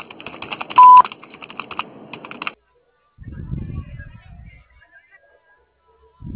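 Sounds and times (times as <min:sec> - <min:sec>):
voicemail beep before leaving a message: 0:00.7 - 0:01.1.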